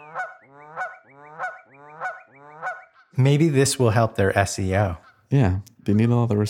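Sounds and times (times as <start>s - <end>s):
Canada goose honking: 0.0s - 3.2s
speech: 3.2s - 6.4s.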